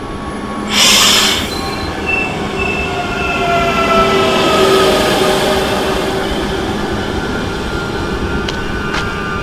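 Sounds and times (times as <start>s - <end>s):
brief hiss of air from passenger train: 0.7s - 1.6s
CP Regional passenger train wheels squealing at station platform: 0.7s - 9.4s.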